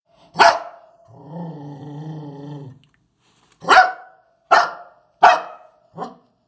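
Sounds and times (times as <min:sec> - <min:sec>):
dog barking: 0:00.4 - 0:00.9, 0:03.6 - 0:06.3
dog low rumbling growl: 0:01.1 - 0:02.9.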